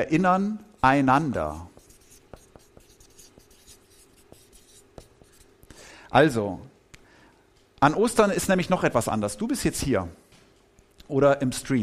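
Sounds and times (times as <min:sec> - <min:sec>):
speech: 0:00.0 - 0:01.7, 0:06.1 - 0:06.7, 0:07.8 - 0:10.2, 0:11.1 - 0:11.8
pen or marker writing on a surface: 0:01.5 - 0:05.5.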